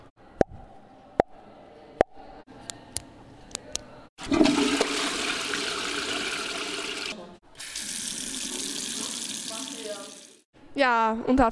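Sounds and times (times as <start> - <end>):
pen clicking: 2.6 - 3.8
loud rushing toilet flush: 4.2 - 10.5
speech: 10.8 - 11.5.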